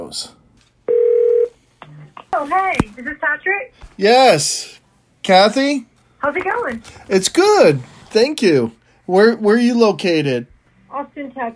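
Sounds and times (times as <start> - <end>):
speech: 0.1 - 0.4, 2.4 - 11.5
telephone tone: 0.9 - 1.5.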